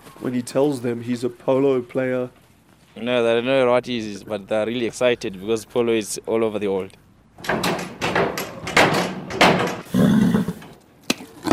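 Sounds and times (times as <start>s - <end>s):
speech: 0.2s - 2.4s, 3.0s - 7.7s
agitated horse kicking a wooden stable door: 7.4s - 10.7s.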